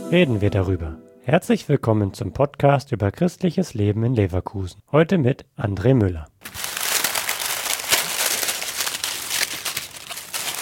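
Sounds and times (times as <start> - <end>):
speech: 0.1 - 6.6
rustling and crinkling of dry woven material from a large woven nest: 6.4 - 10.6.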